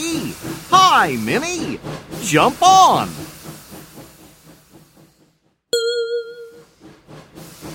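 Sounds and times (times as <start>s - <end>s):
steam train hissing steam: 0.0s - 5.6s, 6.7s - 7.7s
steam train chugging: 0.0s - 7.7s
speech: 1.0s - 3.2s.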